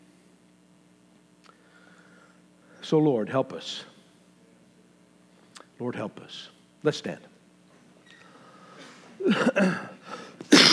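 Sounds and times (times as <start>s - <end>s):
speech: 2.9s - 3.9s, 5.8s - 7.3s, 9.2s - 9.9s
person coughing into microphone: 9.2s - 10.7s.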